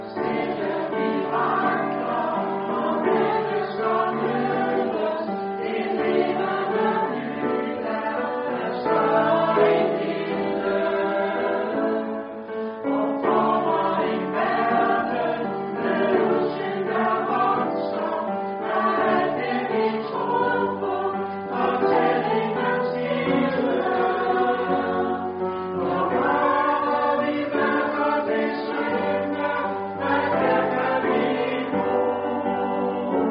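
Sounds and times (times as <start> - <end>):
soprano singing: 0.2 - 33.2.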